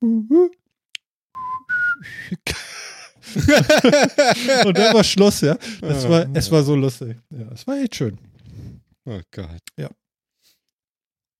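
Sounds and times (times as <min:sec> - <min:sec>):
person whistling and vocalizing an imitation of fax machine tones: 0:01.4 - 0:02.4
laughter: 0:02.4 - 0:06.2
speech: 0:03.3 - 0:08.3, 0:09.0 - 0:10.0.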